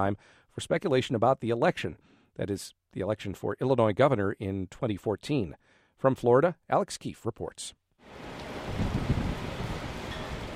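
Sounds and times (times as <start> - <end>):
speech: 0.0 - 8.8
heavy rain whipping against a hotel near Tampa Florida: 8.0 - 10.5
Tropical Storm Isaac strong wind roaring near Tampa Florida: 8.1 - 10.5.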